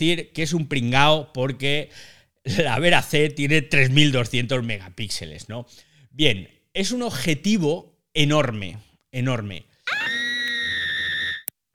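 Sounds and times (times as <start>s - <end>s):
speech: 0.0s - 10.1s
loud sustained high-pitched scream: 9.9s - 11.5s.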